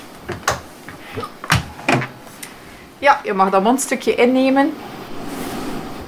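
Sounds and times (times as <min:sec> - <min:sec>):
door being closed with clunks, knocks and a firm thud: 0:00.3 - 0:02.2
speech: 0:01.2 - 0:01.4, 0:03.0 - 0:04.9.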